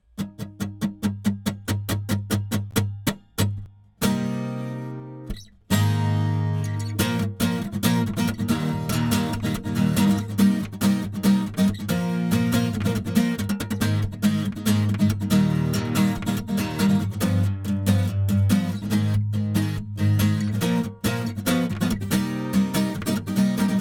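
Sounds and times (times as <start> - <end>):
wet acoustic guitar: 0.0 - 23.8.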